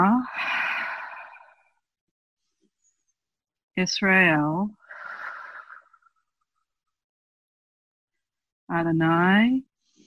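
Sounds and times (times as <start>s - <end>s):
long breath drawn in during slow breathing practice: 0.3s - 1.8s, 4.8s - 6.2s
speech: 3.8s - 4.8s, 8.7s - 9.7s.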